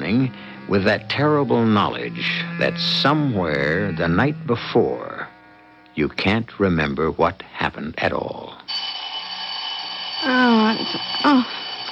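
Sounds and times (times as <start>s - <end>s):
speech: 0.1s - 5.2s, 6.0s - 8.6s, 10.2s - 11.6s
alarm clock ringing with a high-pitched tone: 8.7s - 11.9s.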